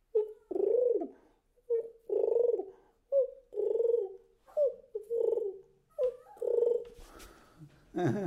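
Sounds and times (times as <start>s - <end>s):
person imitating pigeon cooing: 0.1s - 6.9s
speech: 8.0s - 8.2s.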